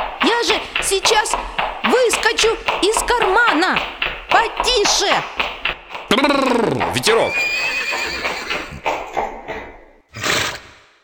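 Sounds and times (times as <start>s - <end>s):
horse trotting with hooves clip-clopping: 0.0s - 10.1s
speech: 0.4s - 5.5s, 6.1s - 8.0s
horse whinnying: 6.2s - 9.2s, 10.1s - 10.9s.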